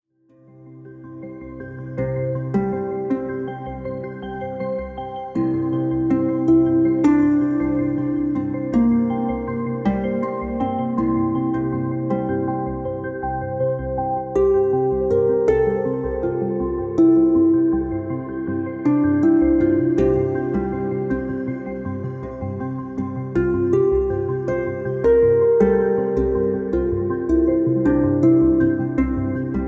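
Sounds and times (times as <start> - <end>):
dreamy harp: 0.3 - 29.6.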